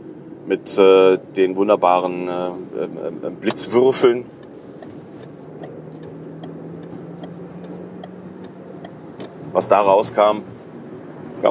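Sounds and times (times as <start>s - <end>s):
speech: 0.5s - 4.4s, 9.6s - 10.5s
truck engine rumble passing by: 2.1s - 11.4s
faint regular ticking: 3.5s - 9.4s.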